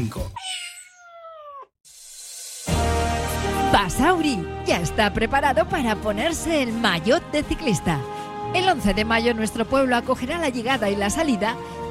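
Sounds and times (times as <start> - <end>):
speech: 0.0 - 0.3, 3.8 - 11.7
cat meow sliding downward in pitch: 0.4 - 1.7.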